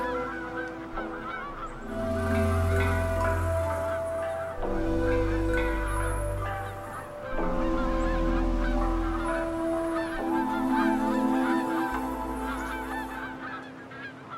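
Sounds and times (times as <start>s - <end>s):
low rumbling: 0.0s - 13.7s
geese honking at a temporary lagoon where they winter: 0.0s - 14.3s.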